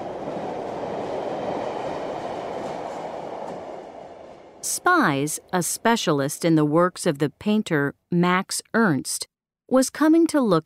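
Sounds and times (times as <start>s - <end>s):
train rolling steadily along the rails: 0.0s - 5.6s
speech: 4.6s - 10.6s.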